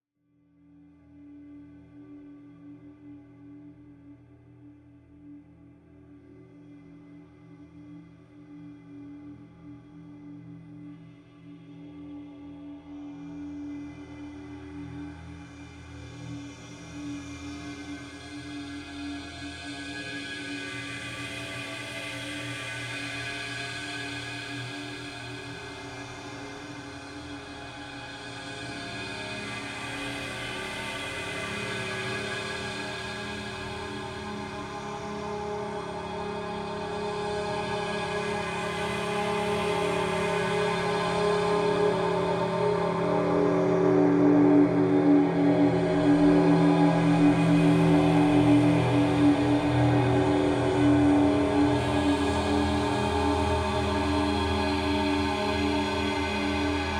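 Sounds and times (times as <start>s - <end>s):
evolving guitar drone swell: 27.4s - 56.9s.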